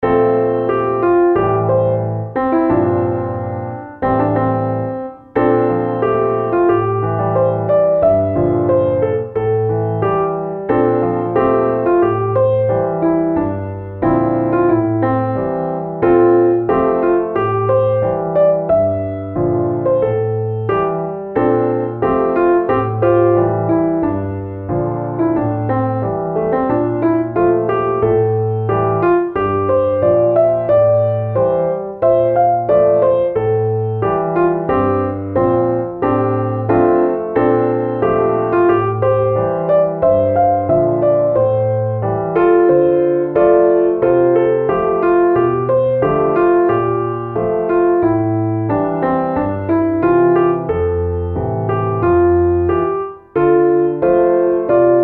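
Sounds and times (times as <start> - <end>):
simple piano: 0.0 - 55.0.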